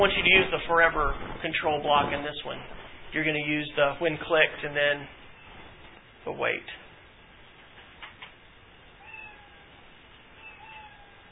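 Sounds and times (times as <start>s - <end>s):
speech: 0.0s - 5.2s, 6.2s - 6.8s
quiet hiss: 0.0s - 11.2s
cat meowing: 9.0s - 11.2s.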